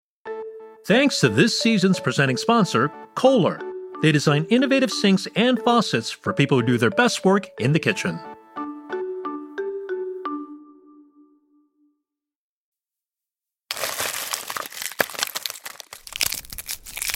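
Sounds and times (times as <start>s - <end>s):
speech: 0.8s - 8.3s
old-fashioned hard candy wrapper crinkling as it is unwrapped: 13.7s - 17.1s.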